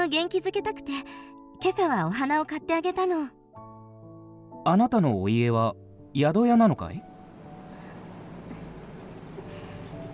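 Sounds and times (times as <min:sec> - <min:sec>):
speech: 0:00.0 - 0:03.4, 0:04.6 - 0:07.1
faint mechanical hiss: 0:07.1 - 0:10.1
bus engine rumbling as the bus arrives: 0:07.2 - 0:10.1.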